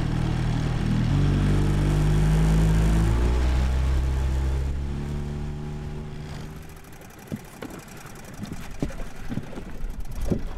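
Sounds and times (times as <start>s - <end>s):
motorboat engine crossing a river to a fish wheel: 0.0s - 10.5s
water sounds: 0.0s - 10.5s.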